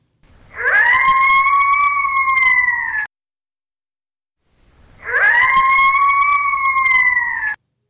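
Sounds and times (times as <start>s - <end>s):
coyote pack howling: 0.5s - 3.1s, 5.0s - 7.6s.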